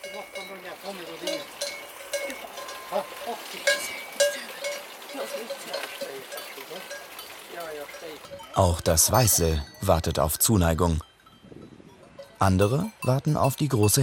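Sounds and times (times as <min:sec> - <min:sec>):
goat bells clanking on an alpine pasture: 0:00.0 - 0:14.0
speech: 0:00.1 - 0:01.3, 0:02.9 - 0:03.9, 0:08.0 - 0:11.1, 0:12.4 - 0:14.0.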